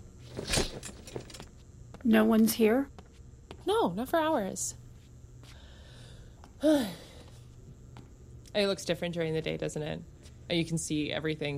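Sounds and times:
keys jangling: 0.3 - 1.5
speech: 2.0 - 3.0, 3.7 - 4.8, 6.6 - 7.0, 8.5 - 11.5.

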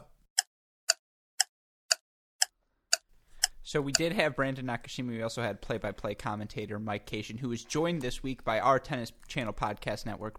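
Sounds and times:
ticking clock used as a timer cue: 0.0 - 4.3
faint noise: 3.1 - 10.3
speech: 3.7 - 10.3.

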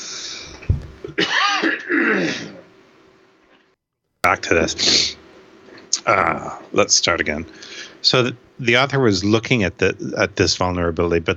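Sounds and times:
thump: 0.6 - 1.0
person coughing harshly with throaty clearing: 1.0 - 2.6
speech: 4.3 - 5.2, 6.0 - 11.3.

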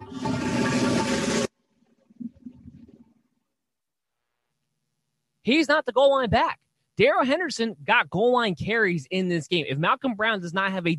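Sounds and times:
toilet flushing: 0.0 - 3.2
water gurgling and trickling in a toilet bowl: 0.0 - 3.2
speech: 5.5 - 10.9.

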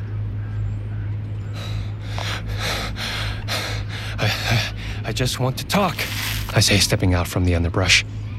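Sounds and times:
low hum: 0.0 - 8.3
heavy rapid breathing after running: 1.5 - 5.2
speech: 5.1 - 8.2.

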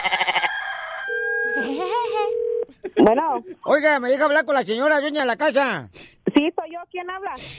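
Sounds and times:
rooster crowing: 0.0 - 1.8
speech: 3.0 - 7.5.

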